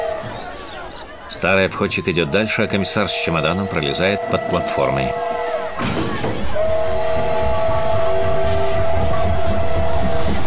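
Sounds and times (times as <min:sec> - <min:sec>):
laughter: 0:00.0 - 0:06.6
speech: 0:01.3 - 0:06.6
train whistle blast at a railway station in Brest: 0:02.7 - 0:10.4
brief burst of noise: 0:05.1 - 0:10.4
constant rumbling background at a railway station: 0:05.1 - 0:10.4.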